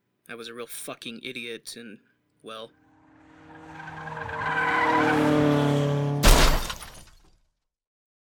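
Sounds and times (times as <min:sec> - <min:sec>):
speech: 0:00.3 - 0:02.8, 0:04.2 - 0:05.5
car tires screeching in a skid: 0:02.8 - 0:07.0
car crash with scattering debris: 0:03.0 - 0:07.4.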